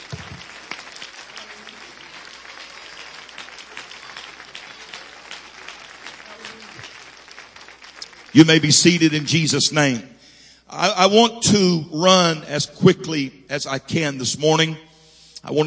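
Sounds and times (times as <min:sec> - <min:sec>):
large group clapping hands in praise: 0:00.0 - 0:09.2
speech: 0:08.4 - 0:15.6.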